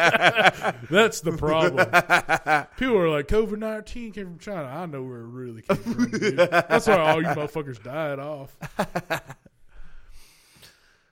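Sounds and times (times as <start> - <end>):
laughter: 0.0 - 3.0, 5.7 - 7.9, 8.6 - 9.5
speech: 0.0 - 9.5
heavy rough breathing: 9.6 - 11.0.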